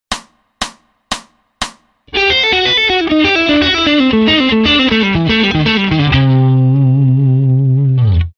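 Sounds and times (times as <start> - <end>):
fast A Dorian melodic line: 2.1 - 7.6.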